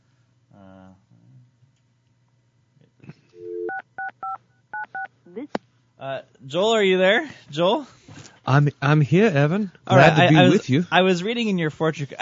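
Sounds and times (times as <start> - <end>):
telephone touch-tone dialing beeps: 3.4 - 5.1
speech: 5.4 - 12.2.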